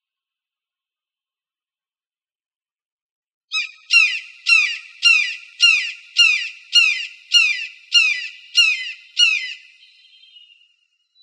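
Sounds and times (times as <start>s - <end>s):
red-shouldered hawk calling: 3.5s - 10.0s.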